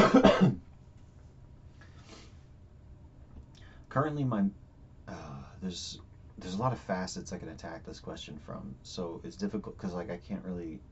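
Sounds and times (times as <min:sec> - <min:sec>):
harsh rasping cough: 0:00.0 - 0:00.6
speech: 0:04.0 - 0:10.9.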